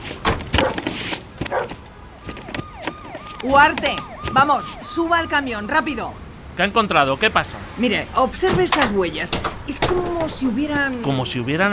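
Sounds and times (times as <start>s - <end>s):
dogs barking while brought in to search a truck during an inspection: 0.6s - 0.8s, 1.4s - 1.8s
speech: 3.4s - 11.7s.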